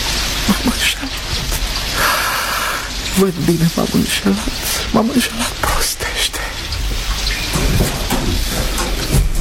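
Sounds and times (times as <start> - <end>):
heavy rain hissing during a thunderstorm: 0.0 - 9.3
speech: 0.5 - 1.5, 3.2 - 6.1.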